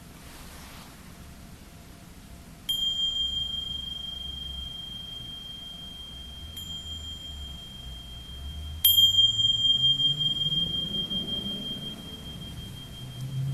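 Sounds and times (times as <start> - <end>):
meditation bell ringing: 2.7 - 13.5.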